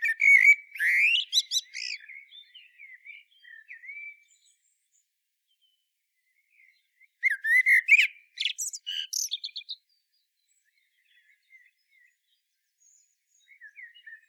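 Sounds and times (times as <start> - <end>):
Common blackbird (Turdus merula) singing: 0.0 - 14.2.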